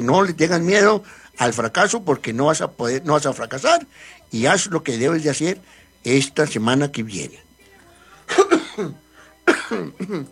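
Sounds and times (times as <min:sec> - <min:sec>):
speech: 0:00.0 - 0:07.5, 0:08.3 - 0:09.0, 0:09.7 - 0:10.3
person coughing with harsh throaty hacks: 0:08.3 - 0:10.3.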